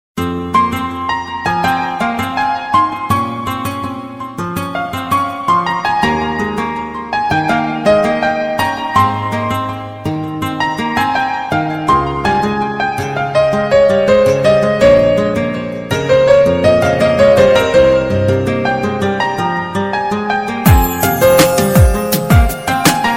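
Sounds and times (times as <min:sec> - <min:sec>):
Romanian guitar: 0:00.2 - 0:23.1
Romanian piano: 0:00.2 - 0:23.1.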